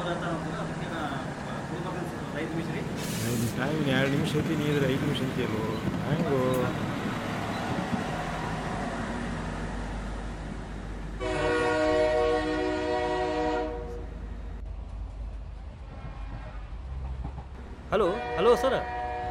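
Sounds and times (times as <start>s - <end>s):
departing train rumbling: 0.0s - 19.2s
speech: 2.6s - 6.9s, 18.0s - 18.9s
train horn blast: 11.2s - 14.1s, 18.0s - 19.2s.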